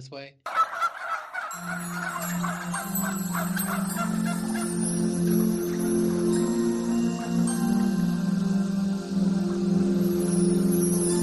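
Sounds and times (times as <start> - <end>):
speech: 0.0 - 0.6, 1.5 - 11.1
turkey gobbling: 0.5 - 4.8.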